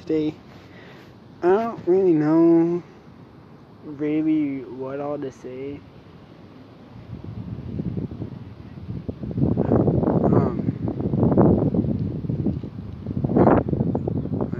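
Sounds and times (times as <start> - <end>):
speech: 0.1 - 0.5, 1.4 - 2.9, 3.8 - 5.9
wind blowing outdoors and buffeting the microphone: 6.8 - 14.5.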